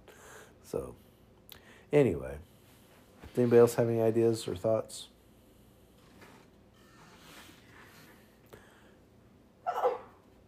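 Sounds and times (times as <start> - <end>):
speech: 0.7 - 1.1, 1.9 - 2.5, 3.4 - 5.1
sneeze: 9.6 - 10.2.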